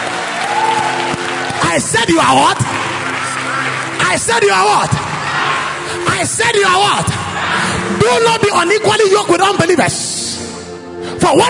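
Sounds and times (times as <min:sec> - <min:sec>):
crowd applauding to celebrate the Lord: 0:00.0 - 0:07.6
speech: 0:01.8 - 0:02.8, 0:04.1 - 0:05.0, 0:06.0 - 0:07.2, 0:08.0 - 0:10.2, 0:11.2 - 0:11.4.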